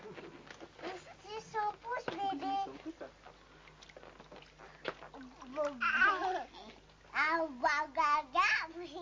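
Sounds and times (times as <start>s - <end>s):
faint splashing: 0.0s - 9.0s
baby babbling: 5.5s - 7.4s.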